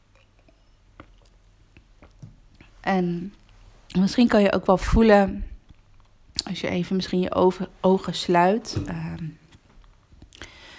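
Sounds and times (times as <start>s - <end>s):
sipping and swallowing water: 0.0s - 4.0s, 9.9s - 10.7s
speech: 2.9s - 5.5s, 6.5s - 9.3s.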